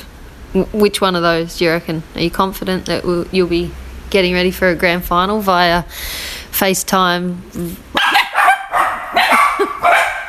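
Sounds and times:
speech: 0:00.5 - 0:07.9
dogs barking: 0:08.0 - 0:10.2.

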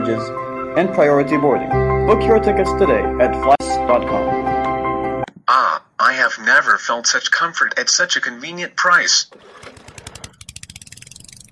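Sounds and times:
speech: 0:00.0 - 0:04.5, 0:05.5 - 0:09.8
small lawn mower engine on a grass lawn aboard a cruise ship: 0:09.3 - 0:10.5.

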